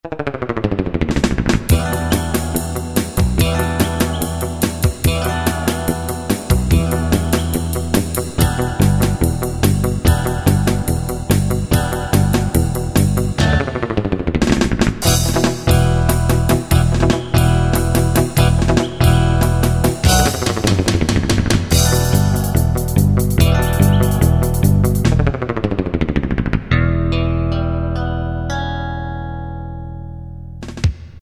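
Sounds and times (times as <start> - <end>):
surf rock preset style on a Yamaha QY70: 1.0 - 29.2.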